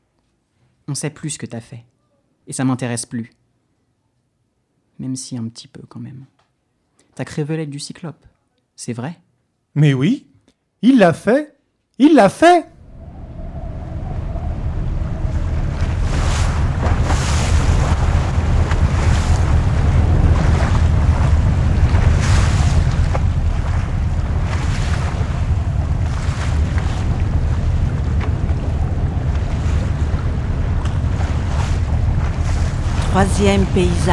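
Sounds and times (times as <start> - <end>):
speech: 0.9 - 3.4, 5.0 - 6.4, 7.2 - 9.2, 9.8 - 12.7, 33.4 - 34.1
gusts of wind: 12.7 - 34.1
surf washing over a grey sea: 12.7 - 34.1.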